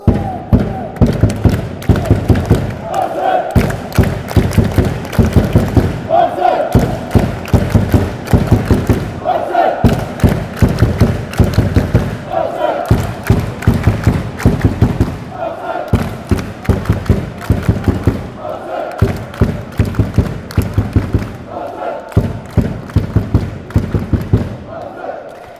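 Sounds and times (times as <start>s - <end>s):
drums: 0.0s - 2.8s, 3.6s - 6.1s, 6.8s - 9.2s, 9.8s - 12.3s, 12.9s - 15.3s, 16.0s - 18.4s, 19.0s - 21.5s
fans chanting: 0.0s - 25.5s.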